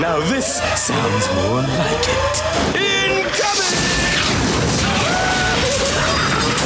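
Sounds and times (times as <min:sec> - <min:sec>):
speech: 0:00.0 - 0:05.3
debris clattering: 0:02.6 - 0:06.6
tank round exploding into a prison cell: 0:02.6 - 0:06.6.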